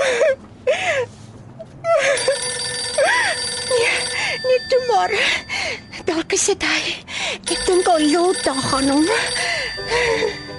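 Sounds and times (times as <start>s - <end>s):
steady tonal hum: 1.6s - 10.5s
telephone ringing in warbling electronic bursts: 2.2s - 6.0s, 7.5s - 10.5s
speech: 6.3s - 10.4s.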